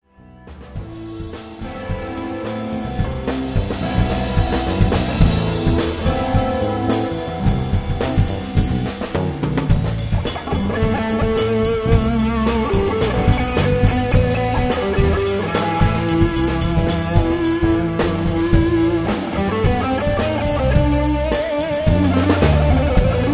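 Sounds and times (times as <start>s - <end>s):
band warmup jam: 0.5s - 23.3s.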